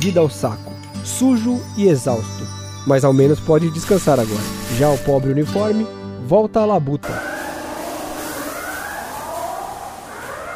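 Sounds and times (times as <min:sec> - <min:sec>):
speech: 0:00.0 - 0:07.3
factory siren wailing: 0:07.0 - 0:10.5
constant wash of noise: 0:07.1 - 0:10.5.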